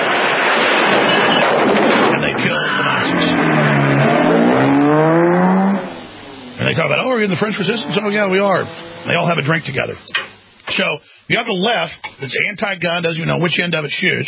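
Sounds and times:
car engine revving as the car pulls up to an outdoor cafe: 0.1s - 9.7s
speech: 7.3s - 14.2s.

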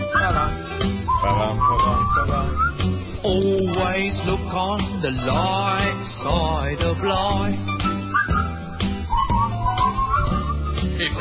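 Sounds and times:
person whistling a tune: 0.0s - 3.0s, 7.7s - 11.0s
speech: 4.0s - 7.8s.

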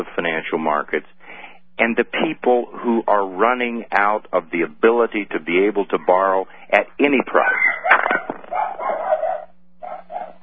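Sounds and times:
speech: 0.0s - 8.3s
dog barking: 7.4s - 10.4s.

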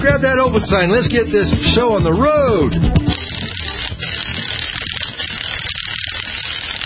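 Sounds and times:
speech: 0.2s - 3.1s
lug wrench ratcheting to raise a sign: 3.1s - 6.8s.

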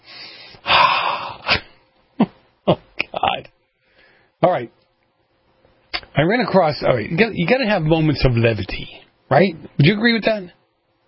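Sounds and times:
deep breath: 0.0s - 1.5s, 3.7s - 4.4s
speech: 4.5s - 4.8s, 6.2s - 10.6s.

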